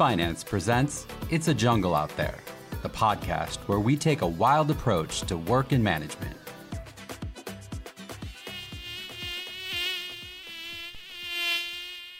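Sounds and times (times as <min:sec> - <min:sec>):
speech: 0:00.0 - 0:06.5
mosquito buzzing in flight: 0:07.4 - 0:12.1.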